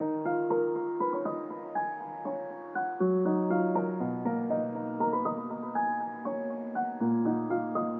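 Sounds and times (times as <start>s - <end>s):
cinematic pensive piano: 0.0s - 7.9s.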